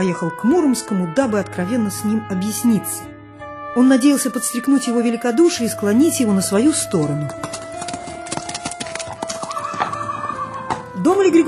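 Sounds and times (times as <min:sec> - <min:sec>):
speech: 0:00.0 - 0:03.1, 0:03.7 - 0:07.7, 0:11.0 - 0:11.4
horse hooves clip-clopping: 0:06.4 - 0:11.4
horse neighing: 0:09.2 - 0:10.9.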